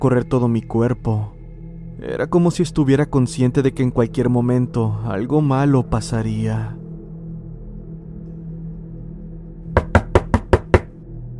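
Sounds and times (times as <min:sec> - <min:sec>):
speech: 0:00.0 - 0:01.4, 0:02.0 - 0:06.8
rapid heavy knocks pounding violently on a door: 0:09.8 - 0:10.9.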